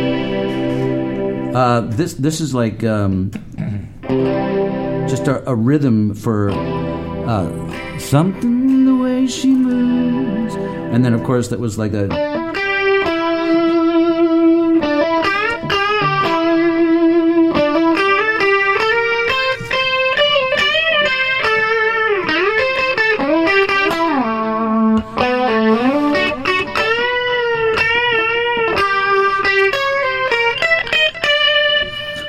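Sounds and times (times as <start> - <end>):
processed distorted instrument melody with slapback echo: 0.0 - 1.6, 4.0 - 5.2, 6.5 - 11.2, 12.1 - 32.2
speech: 1.6 - 8.6, 9.3 - 10.2, 10.9 - 12.3.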